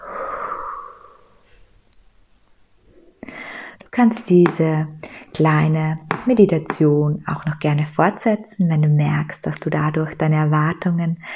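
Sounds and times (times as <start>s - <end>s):
forceful breath out in a relaxation exercise: 0.0s - 1.5s, 3.2s - 3.8s
speech: 4.0s - 11.3s.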